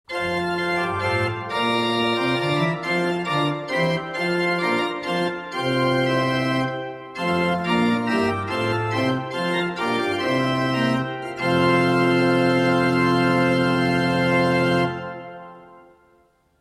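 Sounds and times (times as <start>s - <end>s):
pipe organ principal plenum registration playing: 0.1s - 16.2s.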